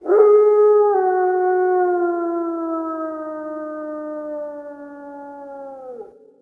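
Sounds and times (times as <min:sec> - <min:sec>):
wolf: 0:00.0 - 0:06.4.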